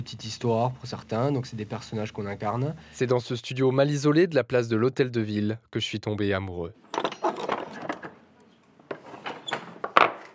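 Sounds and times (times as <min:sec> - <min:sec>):
speech: 0:00.0 - 0:06.8
old wooden door scraping: 0:06.8 - 0:08.2, 0:08.8 - 0:10.3
old wooden medieval castle style door opening: 0:06.8 - 0:10.3.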